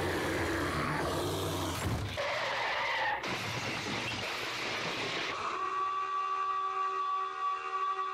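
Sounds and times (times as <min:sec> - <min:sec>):
rushing screeching mechanical sounds: 0:00.0 - 0:08.1
foghorn blast: 0:05.6 - 0:08.1.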